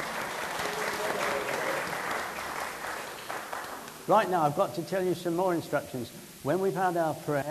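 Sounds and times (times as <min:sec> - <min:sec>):
audience clapping: 0:00.0 - 0:04.3
speech: 0:04.1 - 0:07.4.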